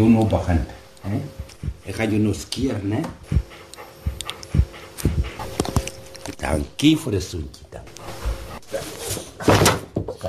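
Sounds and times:
speech: 0:00.0 - 0:03.4, 0:06.4 - 0:07.6
dog panting in the heat: 0:01.4 - 0:06.8, 0:07.9 - 0:09.0.

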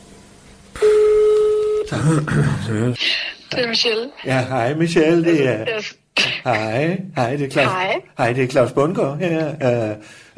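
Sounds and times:
steady electronic phone ringback tone: 0:00.8 - 0:01.9
speech: 0:01.9 - 0:10.3.

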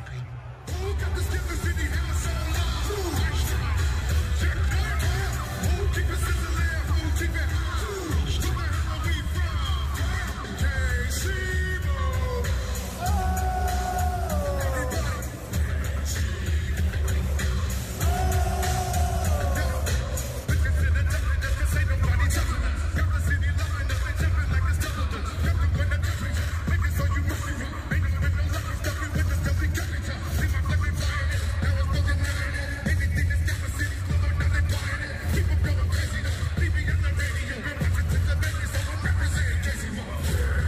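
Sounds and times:
huge concert crowd roaring and cheering at halftime show: 0:00.0 - 0:40.6
scattered whoops and shouts from the crowd: 0:12.9 - 0:15.5, 0:18.0 - 0:20.4.

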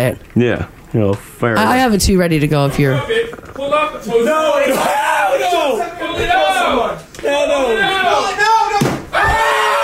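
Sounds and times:
speech: 0:00.0 - 0:08.6
several men shrieking and yelling over a running spider: 0:04.0 - 0:09.8
picture knocked off the wall crashing: 0:08.8 - 0:09.5.

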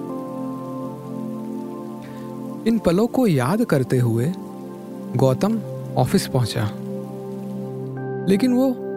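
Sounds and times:
steady rain falling: 0:00.0 - 0:08.8
speech: 0:02.6 - 0:04.4, 0:05.1 - 0:06.8, 0:08.2 - 0:08.8.

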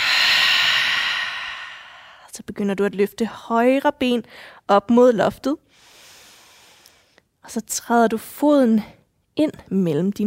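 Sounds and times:
deep breath in through the nose and full exhale during a floor exercise: 0:00.0 - 0:02.3, 0:05.7 - 0:07.2
speech: 0:02.4 - 0:05.9, 0:07.4 - 0:10.2.

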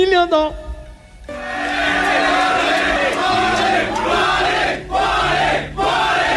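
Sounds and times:
speech: 0:00.0 - 0:00.7
large stadium crowd of football fans chanting a player's name: 0:01.7 - 0:06.3.

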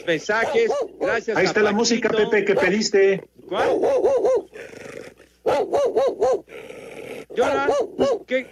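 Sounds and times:
speech: 0:00.0 - 0:04.4, 0:07.4 - 0:08.5
cocker spaniel barking: 0:00.3 - 0:01.4, 0:02.4 - 0:02.9, 0:03.5 - 0:04.6, 0:05.4 - 0:06.5, 0:07.4 - 0:08.4.

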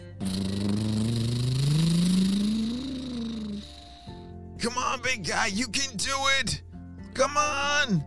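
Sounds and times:
monster truck engine revving at full throttle climbing a muddy hill: 0:00.2 - 0:03.7
speech: 0:04.6 - 0:06.6, 0:07.2 - 0:08.0.

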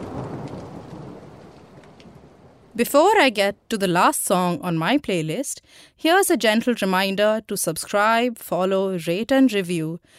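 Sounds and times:
low rumble of thunder: 0:00.0 - 0:02.8
heavy rain pouring down: 0:00.0 - 0:03.7
speech: 0:02.8 - 0:10.1.

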